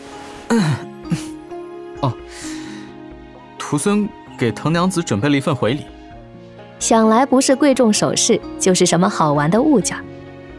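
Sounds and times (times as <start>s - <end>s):
person clearing throat: 0.5s - 1.4s
speech: 3.7s - 6.0s, 6.8s - 10.2s.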